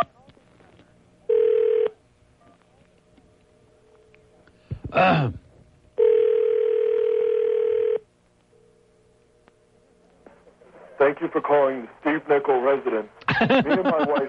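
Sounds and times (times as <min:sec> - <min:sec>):
buzzy ringback tones of an outgoing phone call: 0:01.3 - 0:02.0, 0:06.0 - 0:09.1
short electronic phone tone: 0:01.3 - 0:02.6, 0:06.0 - 0:09.2
speech: 0:05.0 - 0:05.4, 0:11.0 - 0:14.2
laughter: 0:13.2 - 0:14.2.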